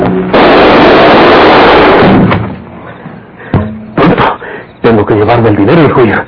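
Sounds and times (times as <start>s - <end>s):
loud sustained burst of gunfire: 0.0s - 2.6s
sharp separate gunshots: 0.0s - 2.6s
speech: 5.1s - 6.2s.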